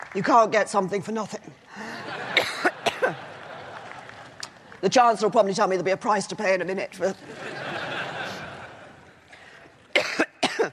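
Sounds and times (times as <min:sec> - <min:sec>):
speech: 0:00.1 - 0:02.7, 0:04.8 - 0:07.6
laughter: 0:01.8 - 0:04.8, 0:07.2 - 0:09.2
woman coughing during a speech: 0:02.4 - 0:03.2, 0:10.0 - 0:10.7.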